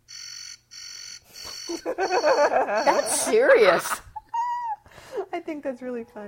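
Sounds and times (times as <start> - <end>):
phone dial pad backspace alert tones: 0.1 - 3.8
speech: 1.7 - 4.0, 5.4 - 6.2
laughter: 1.7 - 4.8.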